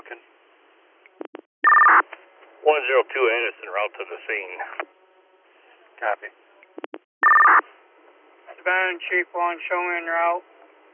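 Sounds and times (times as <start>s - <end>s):
telephone dialing tones over a phone line: 1.6s - 2.0s, 7.2s - 7.6s
speech: 2.7s - 4.9s, 6.0s - 6.4s, 8.7s - 10.5s.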